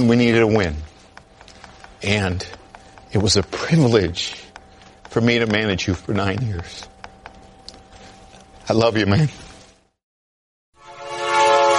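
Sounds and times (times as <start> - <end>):
speech: 0.0 - 0.9, 2.0 - 4.4, 5.2 - 6.9, 8.7 - 9.4
train horn sound effect: 10.8 - 11.7.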